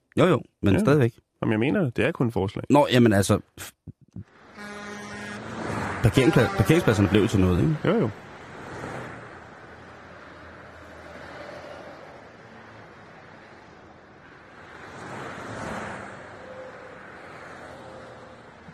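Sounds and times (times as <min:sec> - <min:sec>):
speech: 0:00.2 - 0:04.7, 0:06.0 - 0:08.2
cars driving past on a road: 0:04.2 - 0:18.7.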